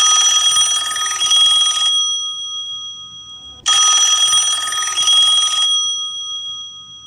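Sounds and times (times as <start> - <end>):
telephone ringing: 0.0 - 2.2, 3.3 - 6.2.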